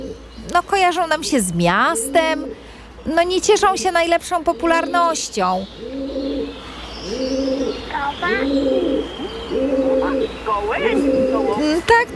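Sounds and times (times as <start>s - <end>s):
higher bird chirps: 0.0s - 11.7s
pigeons cooing in low rolling calls: 0.0s - 12.1s
speech: 0.5s - 6.0s, 10.5s - 12.1s.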